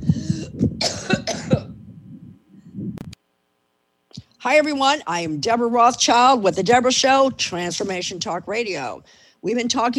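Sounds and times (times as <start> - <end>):
person clearing throat in harsh raspy bursts: 0.8 - 1.8
speech: 4.4 - 9.9.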